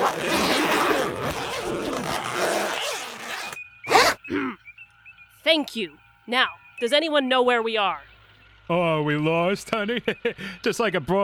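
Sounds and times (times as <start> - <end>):
several clothing zippers being zipped up: 0.0 - 4.2
speech: 5.5 - 8.1, 8.7 - 11.2.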